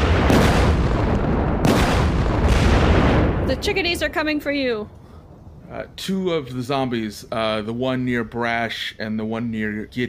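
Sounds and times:
roar of booming crackling debris: 0.0 - 4.4
loud rumbling explosions: 0.0 - 5.6
speech: 3.6 - 5.0, 5.7 - 10.0.

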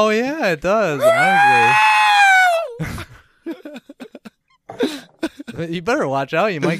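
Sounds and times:
speech: 0.0 - 2.0, 5.6 - 6.7
person imitating a high-pitched scream: 1.0 - 2.8.

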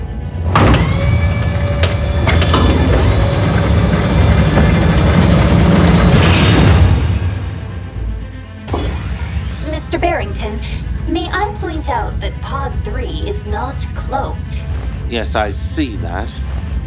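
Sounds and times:
heavy mechanical doors grinding open with a motorized whir: 0.3 - 7.3, 8.7 - 15.0
speech: 13.8 - 16.6.

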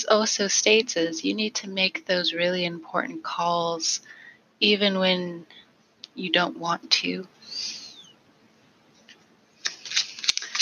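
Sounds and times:
speech: 0.0 - 5.6, 6.2 - 7.8
deck of tarot cards being shuffled: 9.1 - 10.6.

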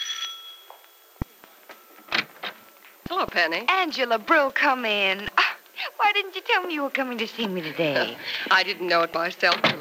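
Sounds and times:
bright metallic doorbell chime: 0.0 - 1.1
speech: 3.1 - 5.3, 6.1 - 9.8.

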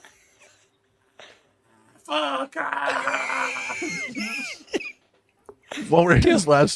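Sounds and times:
person screaming angrily imitating a fall after a parachute failure: 2.1 - 4.2
speech: 2.1 - 4.9, 5.8 - 6.7
laughter: 3.0 - 5.1.

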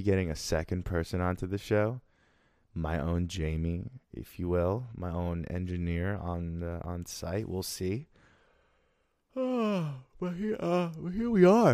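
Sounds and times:
speech: 0.0 - 2.1, 2.8 - 8.2, 9.4 - 11.7
person yawning aloud: 9.3 - 11.1.

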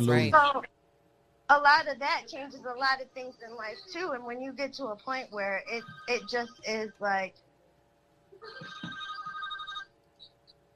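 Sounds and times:
speech: 0.0 - 0.8, 1.5 - 7.4, 8.4 - 8.9
telephone ringing in an electronic trill: 5.7 - 6.9, 8.4 - 10.0.

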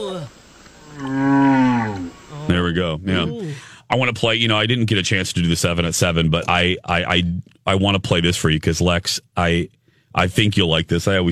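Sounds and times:
speech: 0.0 - 1.3, 2.5 - 11.2
whale call with low moaning harmonic tone: 0.8 - 2.5.

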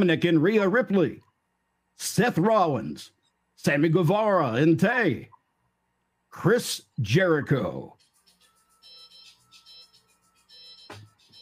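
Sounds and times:
speech: 0.0 - 1.2, 2.0 - 5.3, 6.3 - 8.0
work phone ringtone upstairs, repeating electronic melody: 8.0 - 11.4.

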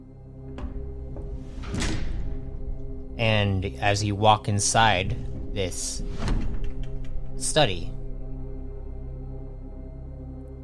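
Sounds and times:
heavy doors swinging open: 0.0 - 3.8, 4.4 - 9.0
speech: 3.2 - 6.5, 7.4 - 8.0.

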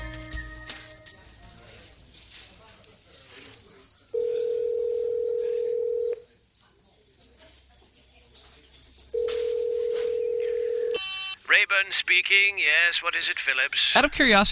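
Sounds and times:
telephone line ringing tones while connecting: 4.1 - 6.3, 9.2 - 11.4
speech: 11.8 - 14.5.

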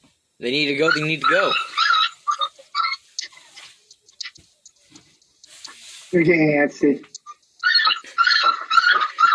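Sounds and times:
speech: 0.4 - 1.8, 6.1 - 7.1
dogs barking and yipping: 0.8 - 4.5, 7.2 - 9.3.

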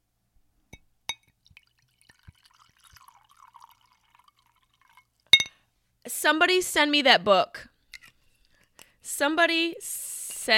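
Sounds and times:
sharp glassy clinks: 1.1 - 1.3, 5.3 - 5.6
sake poured into a glass: 1.1 - 5.5
speech: 6.1 - 7.7, 9.2 - 10.5.

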